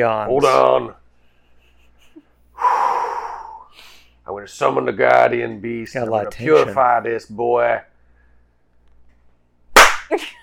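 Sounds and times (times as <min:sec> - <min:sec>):
speech: 0:00.0 - 0:01.0, 0:04.3 - 0:07.9, 0:10.1 - 0:10.4
hand slapping a man's forehead: 0:09.7 - 0:10.2.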